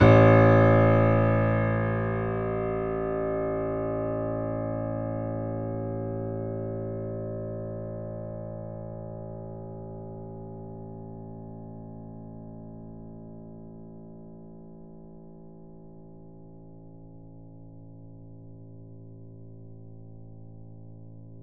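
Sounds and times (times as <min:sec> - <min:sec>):
grand piano A0 note: 0:00.0 - 0:08.8.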